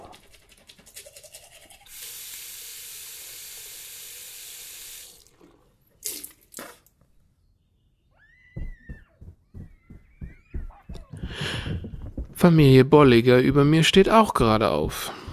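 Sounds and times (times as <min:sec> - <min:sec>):
toothbrush bristles brushing teeth: 0:00.0 - 0:02.4
chirpy sounds: 0:07.4 - 0:11.3
speech: 0:12.4 - 0:15.2.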